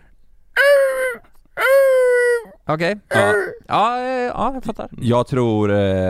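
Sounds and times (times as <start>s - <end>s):
person's voice imitating a fox's call with nasal wailing cries: 0.6s - 3.7s
speech: 2.7s - 6.0s.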